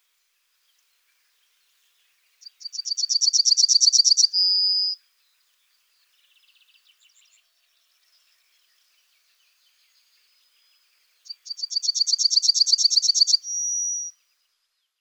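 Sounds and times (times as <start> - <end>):
yellowhammer singing: 2.4 - 5.0, 11.3 - 14.1.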